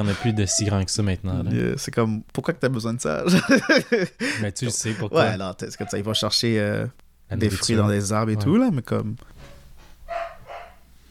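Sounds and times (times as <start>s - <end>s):
laughter: 0.0s - 0.4s, 3.2s - 5.4s
dogs barking: 0.0s - 1.0s, 5.7s - 6.4s, 9.4s - 10.9s
speech: 0.0s - 9.3s
low steady hum: 0.0s - 11.0s.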